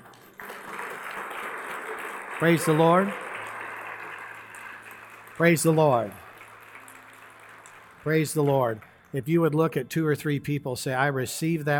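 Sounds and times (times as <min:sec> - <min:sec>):
audience applause from a large group in a room: 0:00.0 - 0:09.1
speech: 0:02.4 - 0:03.2, 0:05.4 - 0:06.2, 0:08.0 - 0:11.7.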